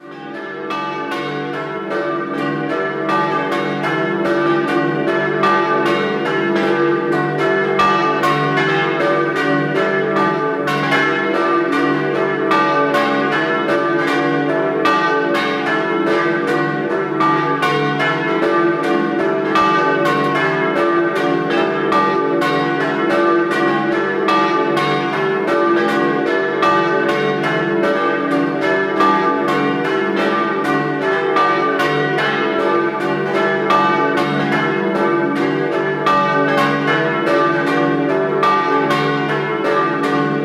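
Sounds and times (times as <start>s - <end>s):
church bells ringing in Sacile: 0.0s - 40.4s.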